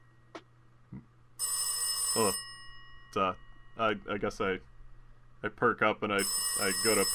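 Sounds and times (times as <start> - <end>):
telephone bell ringing in a metallic burst: 1.4 - 3.1, 6.2 - 7.1
speech: 2.2 - 2.4, 3.1 - 4.7, 5.4 - 7.1.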